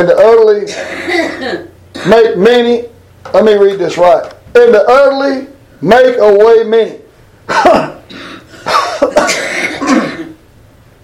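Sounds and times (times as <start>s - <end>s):
speech: 0.0s - 8.0s
person coughing harshly: 0.7s - 2.2s, 7.5s - 10.4s.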